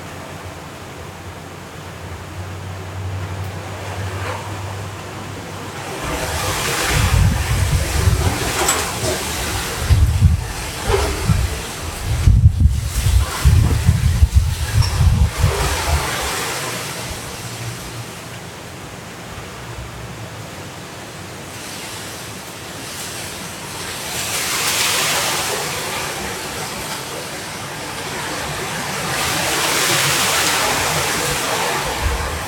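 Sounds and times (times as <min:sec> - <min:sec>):
hurricane storm wind roaring at midnight: 0:02.5 - 0:18.2, 0:22.8 - 0:32.4
hurricane rain hissing at midnight: 0:05.6 - 0:18.4, 0:21.4 - 0:32.4.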